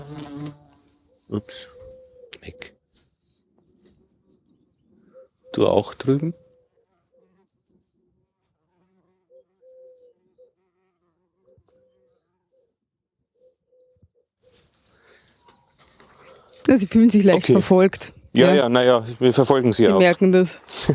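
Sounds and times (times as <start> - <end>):
bumblebee buzzing: 0.0 - 1.1, 6.8 - 12.4
faint birds outdoors: 0.2 - 20.9
speech: 1.3 - 1.8, 2.4 - 2.8, 5.6 - 6.4, 16.7 - 20.9.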